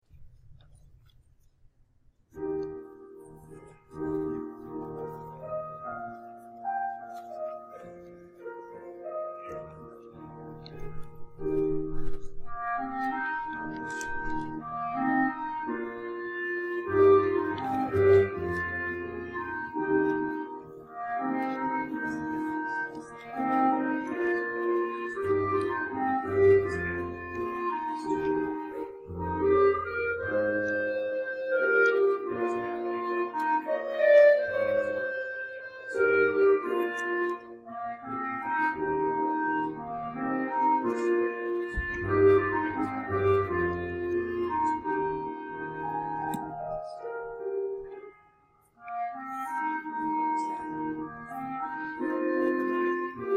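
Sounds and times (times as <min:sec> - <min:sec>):
person playing an instrument: 0:02.4 - 0:53.3.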